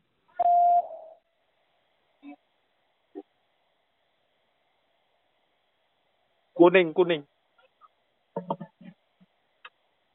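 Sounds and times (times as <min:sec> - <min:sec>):
single loud steady answer prompt beep tone: 0:00.4 - 0:01.2
speech: 0:06.6 - 0:07.4.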